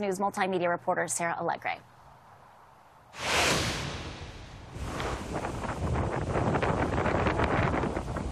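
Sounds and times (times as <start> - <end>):
speech: 0.0 - 1.9
storm wind roaring in Fort Walton Beach: 3.2 - 8.2
storm rain in Fort Walton Beach: 4.8 - 8.2.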